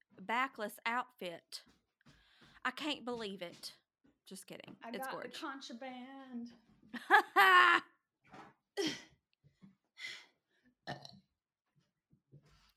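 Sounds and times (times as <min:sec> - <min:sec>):
speech: 0:00.3 - 0:01.8, 0:02.6 - 0:07.9
laughter: 0:07.0 - 0:07.8
loud burp with a low throaty rumble: 0:10.9 - 0:11.2.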